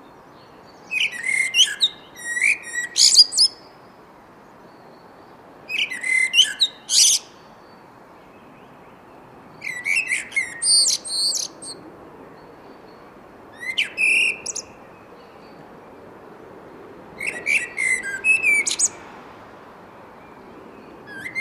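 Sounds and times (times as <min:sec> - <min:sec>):
Eurasian blackbird Turdus merula singing: 0:00.4 - 0:03.7, 0:05.7 - 0:07.4, 0:09.6 - 0:11.8, 0:13.6 - 0:15.6, 0:17.2 - 0:19.0.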